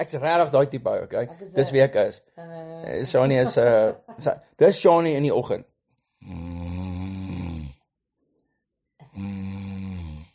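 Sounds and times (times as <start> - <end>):
speech: 0.0 - 6.4
woman snoring: 6.2 - 7.8, 9.0 - 10.3.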